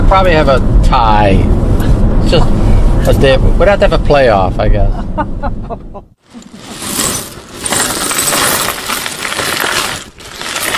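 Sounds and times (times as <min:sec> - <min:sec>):
speech: 0:00.2 - 0:01.6, 0:02.3 - 0:06.1
small pieces of glass clinking and rattling while being sorted at home: 0:06.3 - 0:10.7.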